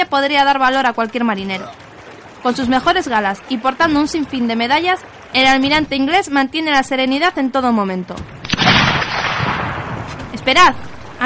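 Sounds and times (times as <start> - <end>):
speech: 0.0 - 1.8, 2.4 - 8.4, 10.4 - 11.2
rumbling gunfire and booming in a naval battle: 8.2 - 11.2
gunshot from a ship in a naval battle: 8.4 - 10.3.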